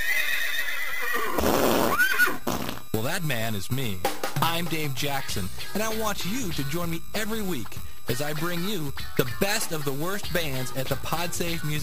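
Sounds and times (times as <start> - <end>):
horse neighing near a parade: 0.0 - 2.8
speech: 3.0 - 11.8.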